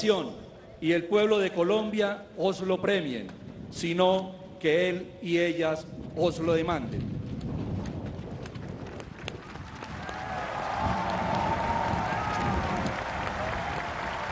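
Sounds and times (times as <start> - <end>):
speech: 0.0 - 7.1
applause at a presidential swearing-in: 8.7 - 14.3.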